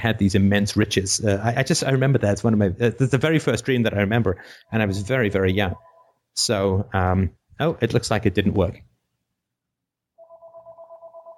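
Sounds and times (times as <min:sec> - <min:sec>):
speech: 0:00.0 - 0:08.9
telephone ringing with an electronic trill: 0:04.7 - 0:06.2, 0:10.2 - 0:11.3.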